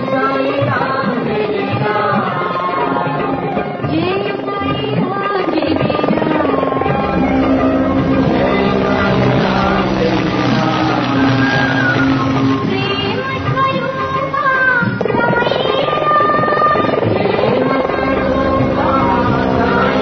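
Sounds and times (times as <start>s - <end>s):
helicopter flying overhead showering flowers over a final resting place: 0.0s - 20.0s
voices and crowd murmur: 5.4s - 13.5s, 16.3s - 20.0s.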